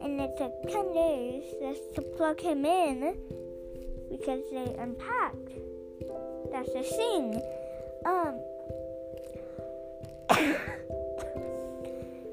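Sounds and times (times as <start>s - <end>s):
speech: 0.2s - 3.4s, 4.1s - 5.7s, 6.5s - 8.8s
person coughing sharply: 10.3s - 11.5s.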